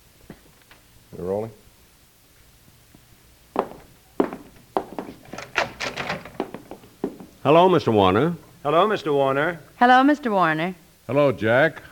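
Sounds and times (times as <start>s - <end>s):
speech: 1.1s - 1.6s, 7.4s - 11.9s
heavy footsteps: 3.6s - 7.4s
wooden door opening with knocks and rattles: 5.0s - 6.8s.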